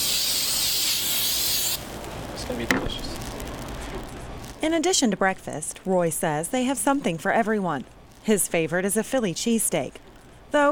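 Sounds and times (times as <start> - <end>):
cooking spray sprayed on a waffle iron in a store: 0.0 - 1.9
speech: 2.5 - 3.1, 4.6 - 10.7.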